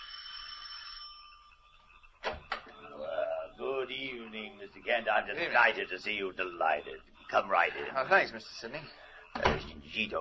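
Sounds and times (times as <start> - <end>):
doorbell ringing with a bright metallic tone: 0.0 - 1.6
speech: 3.9 - 10.1.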